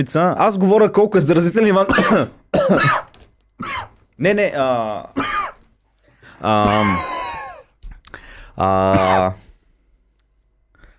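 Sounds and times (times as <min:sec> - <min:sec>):
speech: 0:00.0 - 0:05.3, 0:06.4 - 0:07.1, 0:08.6 - 0:09.4
person coughing harshly: 0:01.8 - 0:04.0, 0:05.2 - 0:05.7, 0:06.6 - 0:07.7, 0:08.8 - 0:09.4.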